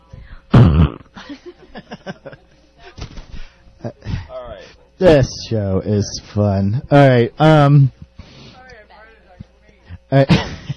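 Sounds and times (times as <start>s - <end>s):
wet raspberry blown with the lips: 0.5s - 1.1s
people laughing softly: 1.2s - 5.0s
speech: 5.0s - 8.0s, 10.1s - 10.5s.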